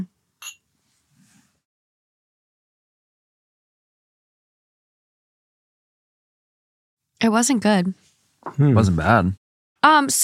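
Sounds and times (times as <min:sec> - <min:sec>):
glasses clinking in a toast: 0:00.4 - 0:00.7
speech: 0:07.2 - 0:10.2
soft low murmur of movement: 0:07.9 - 0:08.6.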